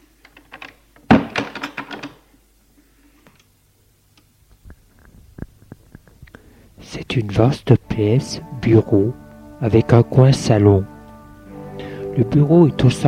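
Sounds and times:
door opening and closing: 0.3 - 2.2
speech: 7.0 - 10.9, 12.2 - 13.0.

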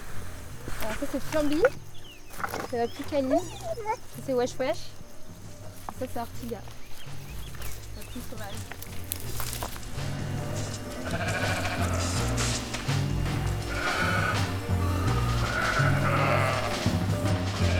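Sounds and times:
shuffling movement of walking sheep: 0.0 - 17.7
speech: 0.8 - 5.0, 6.0 - 7.2, 8.2 - 9.5
mountain flock of nervous ewes bleating: 10.3 - 17.7.

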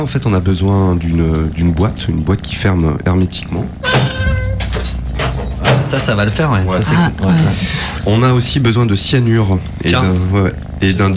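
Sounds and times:
speech: 0.0 - 4.4, 5.9 - 11.1
steady low rumble: 0.0 - 11.1
cat meowing: 3.8 - 5.0
short breathy rustling: 7.3 - 8.1.

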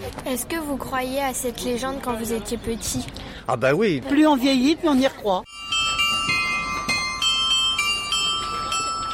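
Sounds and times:
speech: 0.2 - 5.5
town clock carillon ringing the hour: 5.5 - 9.1.

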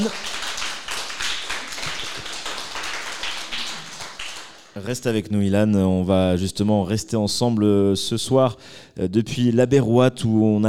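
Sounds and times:
speech: 0.0 - 0.3, 4.8 - 10.6
crowd applauding: 0.0 - 4.8.

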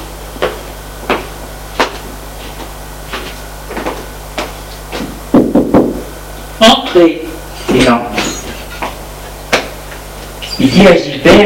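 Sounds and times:
knocking on a wooden living room door: 5.3 - 6.0
speech: 6.9 - 8.2, 10.7 - 11.4.

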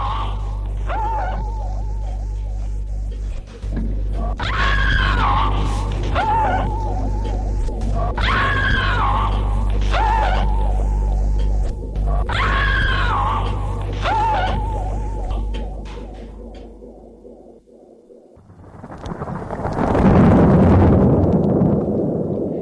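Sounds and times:
woman screaming in terror: 0.0 - 1.6, 4.4 - 7.0, 8.2 - 10.7, 12.3 - 15.4
low rumbling drone: 0.0 - 22.5
loud noisy burst of thunder: 18.4 - 22.5.

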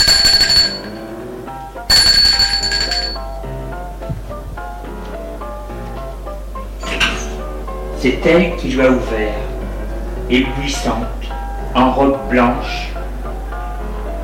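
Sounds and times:
doorbell ringing at a house with a party: 0.0 - 3.5
party music playing: 0.0 - 14.2
speech: 8.0 - 9.4, 10.3 - 12.9.

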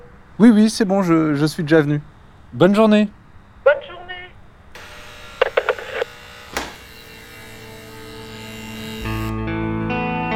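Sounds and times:
speech: 0.4 - 3.8
bees buzzing: 4.8 - 10.3.

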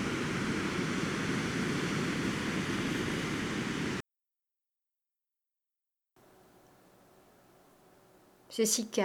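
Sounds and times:
ocean surf washing over the shore: 0.0 - 4.0
speech: 8.5 - 9.0.

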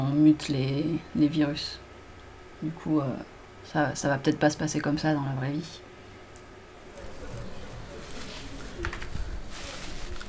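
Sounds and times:
speech: 0.2 - 1.8, 2.6 - 5.8
dry soil crumbling and trickling: 7.0 - 10.2.

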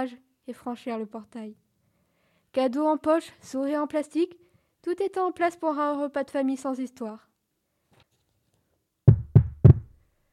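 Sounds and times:
speech: 0.0 - 1.6, 2.5 - 7.3
firm knocking on a wooden door: 9.1 - 9.9.

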